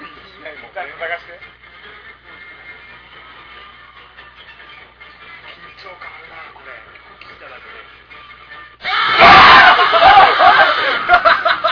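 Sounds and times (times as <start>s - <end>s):
several people screaming in fright: 8.8s - 11.2s
laughter: 9.4s - 11.7s.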